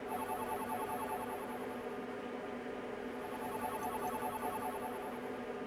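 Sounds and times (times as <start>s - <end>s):
machine: 0.0s - 2.0s, 3.2s - 5.5s.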